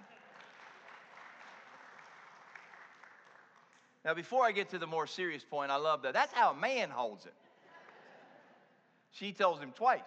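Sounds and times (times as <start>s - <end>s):
crowd applauding: 0.0s - 3.8s
speech: 4.0s - 7.5s, 9.2s - 10.0s.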